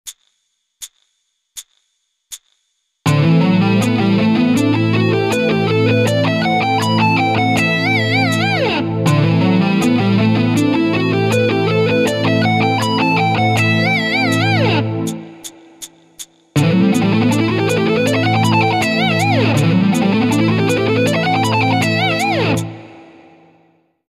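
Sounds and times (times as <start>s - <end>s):
guitar economy picking: 3.1s - 15.3s, 16.6s - 22.9s.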